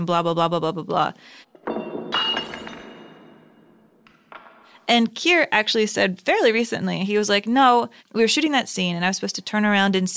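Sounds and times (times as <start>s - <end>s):
speech: 0.0s - 1.5s, 4.9s - 10.1s
wine glass tipping over with a dull knock: 1.5s - 4.7s
wine glass shards tinkling and scattering: 1.6s - 3.7s
wine glass shattering with a bright crash: 1.6s - 4.4s.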